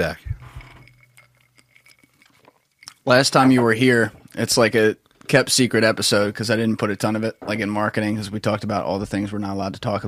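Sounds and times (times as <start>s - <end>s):
speech: 0.0s - 0.2s, 3.1s - 10.0s
glasses clinking in a toast: 0.0s - 4.1s, 6.2s - 8.4s.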